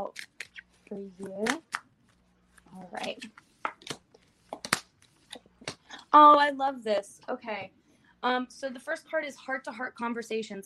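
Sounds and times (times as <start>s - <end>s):
speech: 0.1s - 0.3s, 0.9s - 1.7s, 2.8s - 3.5s, 6.1s - 10.6s
oracle cards being handled: 0.1s - 5.9s.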